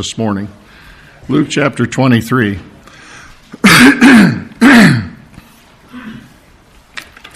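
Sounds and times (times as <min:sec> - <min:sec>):
speech: 0:00.0 - 0:02.7, 0:03.7 - 0:05.0
person with a hoarse voice clearing throat: 0:03.6 - 0:05.3, 0:05.9 - 0:06.4.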